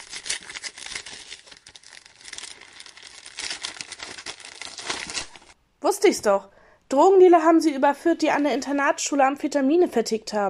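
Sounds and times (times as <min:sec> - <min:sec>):
paper letter from the post crinkling as it is opened and unfolded: 0:00.0 - 0:05.6
speech: 0:05.8 - 0:10.4.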